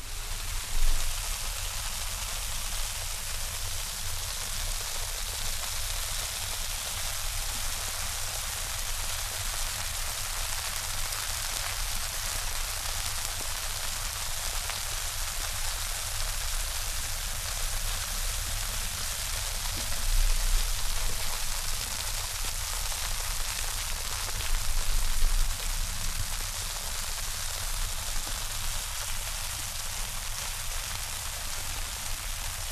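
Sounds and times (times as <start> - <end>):
steady rain: 0.0 - 32.6.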